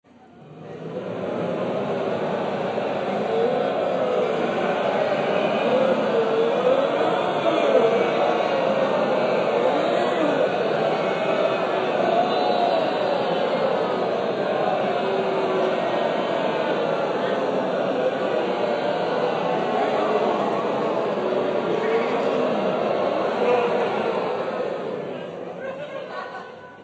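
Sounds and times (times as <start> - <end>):
zombie crowd: 0.1 - 26.8
laughter: 0.5 - 26.8.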